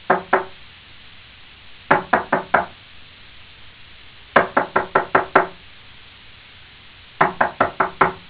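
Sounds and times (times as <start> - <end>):
knocking: 0.1 - 0.5, 1.9 - 2.7, 4.4 - 5.6, 7.2 - 8.2.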